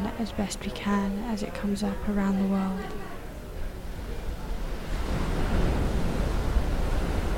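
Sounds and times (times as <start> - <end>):
speech: 0.2 - 3.2
ocean surf rolling and washing: 1.9 - 7.3.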